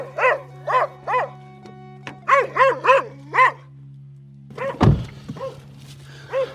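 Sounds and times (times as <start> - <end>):
dog barking at a door: 0.0 - 1.4, 2.3 - 3.6, 4.5 - 4.8, 5.4 - 5.6, 6.3 - 6.5
heavy thud: 4.8 - 5.2.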